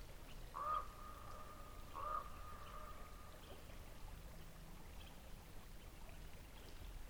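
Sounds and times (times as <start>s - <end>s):
constant low rumble and hiss: 0.0s - 7.0s
raven croaking in flight: 0.6s - 3.0s.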